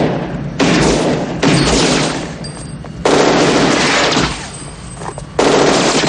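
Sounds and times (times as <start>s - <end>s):
machine gun fire during a shootout in an action police film: 0.0s - 2.4s, 3.0s - 4.5s, 5.4s - 6.0s.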